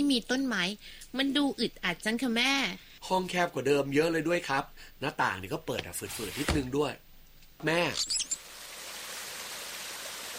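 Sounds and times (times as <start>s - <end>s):
speech: 0.1s - 7.0s, 7.6s - 8.4s
water gushing hard from a tap: 8.2s - 10.3s.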